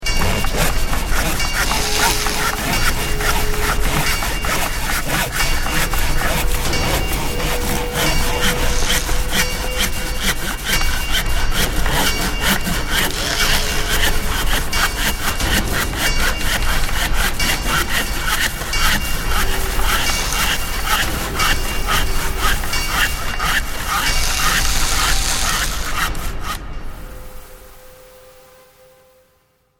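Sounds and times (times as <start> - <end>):
clanging in a large construction workshop: 0.0 - 26.1
various tools working in a large construction workshop: 0.0 - 27.5.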